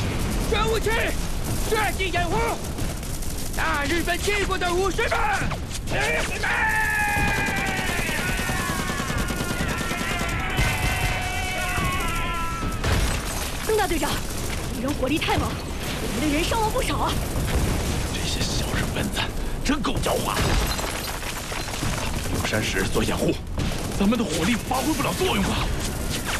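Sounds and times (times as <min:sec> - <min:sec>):
dense continuous gunfire in a battle scene: 0:00.0 - 0:26.3
shouting voices in a battle scene: 0:04.9 - 0:13.2.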